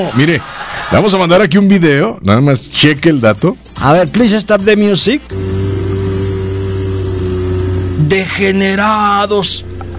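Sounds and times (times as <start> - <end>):
speech: 0.0 - 5.5, 8.0 - 9.7
motorboat engine droning on a boat heading toward Boquilla: 5.2 - 9.9.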